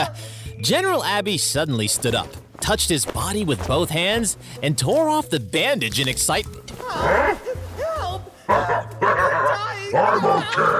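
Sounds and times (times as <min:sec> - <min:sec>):
speech: 0:00.0 - 0:07.4, 0:09.1 - 0:10.7
dog barking and yipping: 0:08.5 - 0:09.6.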